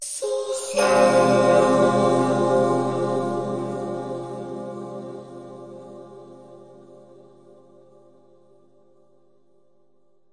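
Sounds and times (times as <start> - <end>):
vocal chord: 0.2 - 8.2.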